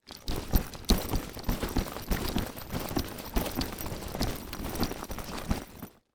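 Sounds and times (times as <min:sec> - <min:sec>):
sports duffle bag rattling fast: 0:00.0 - 0:06.0.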